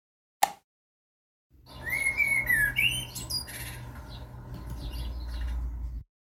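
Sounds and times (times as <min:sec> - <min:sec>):
sharp click: 0:00.4 - 0:00.6
blackbird singing a fluting song of whistled phrases: 0:01.6 - 0:06.0
low outdoor rumble: 0:01.6 - 0:06.0.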